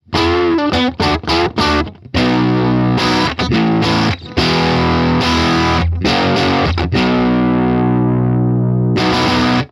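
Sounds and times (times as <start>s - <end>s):
dirty Stratocaster on bridge and middle: 0.0s - 9.6s.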